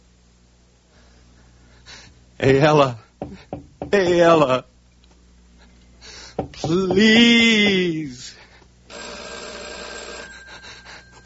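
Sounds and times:
speech: 0:02.4 - 0:03.0, 0:03.9 - 0:04.7, 0:06.6 - 0:08.4
telephone bell ringing: 0:08.9 - 0:11.2.

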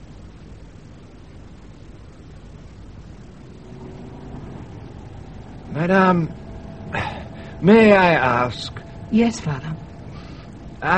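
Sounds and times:
faint whine over old battered car engine: 0:00.0 - 0:10.9
old battered car engine running: 0:02.6 - 0:10.9
speech: 0:05.8 - 0:07.0, 0:07.6 - 0:09.8.

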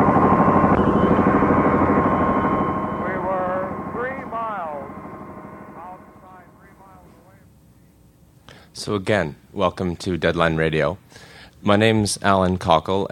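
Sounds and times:
helicopter engine roar as the helicopter comes in to land: 0:00.0 - 0:07.6
voices: 0:03.0 - 0:05.0, 0:05.6 - 0:07.5
speech: 0:08.8 - 0:13.0.

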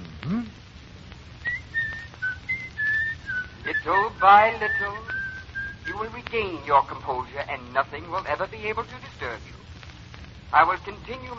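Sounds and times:
brief low vocal sound: 0:00.0 - 0:00.6
person whistling a tune: 0:01.5 - 0:05.9
speech: 0:03.8 - 0:05.2, 0:06.0 - 0:09.7, 0:10.5 - 0:11.3.

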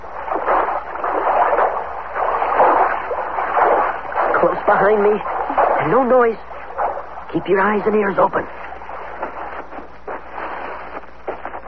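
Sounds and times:
feet wading and splashing through water: 0:00.0 - 0:11.6
speech: 0:04.7 - 0:06.5, 0:07.3 - 0:08.6.

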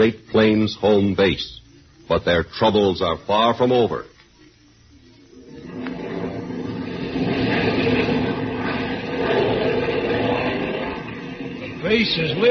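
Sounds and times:
speech: 0:00.0 - 0:04.1, 0:11.9 - 0:12.5
airplane engine droning in flight with one motor out of action: 0:05.0 - 0:12.5.

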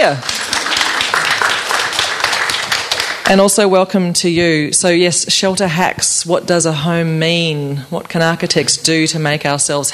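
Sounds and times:
speech: 0:00.0 - 0:00.3, 0:03.3 - 0:09.9
audience applauding panellists of a discussion: 0:00.0 - 0:03.4.

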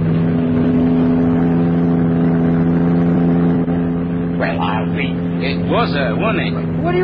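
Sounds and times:
sports car engine roaring while driving past another car: 0:00.0 - 0:07.0
speech: 0:05.7 - 0:07.0.

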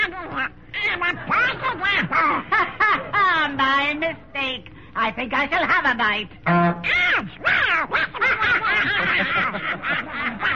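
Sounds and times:
cartoon duck quacking: 0:00.0 - 0:02.5, 0:05.5 - 0:10.5
laughter: 0:00.8 - 0:03.8, 0:07.6 - 0:10.5
speech: 0:05.0 - 0:07.4.

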